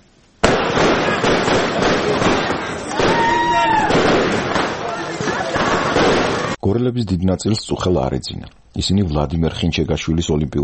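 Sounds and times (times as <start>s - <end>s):
fireworks crackling and popping at a street celebration: 0.0s - 6.6s
whistling firework rocket: 0.5s - 4.8s
crowd voices at a street celebration: 0.9s - 6.6s
speech: 6.7s - 10.6s.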